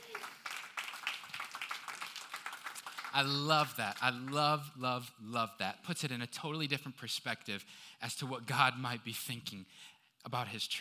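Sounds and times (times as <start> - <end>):
crowd applauding: 0.0 - 4.4
speech: 3.1 - 10.7.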